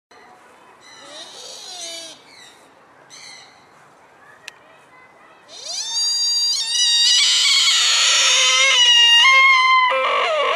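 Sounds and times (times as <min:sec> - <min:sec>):
sika deer call: 0:05.5 - 0:10.5.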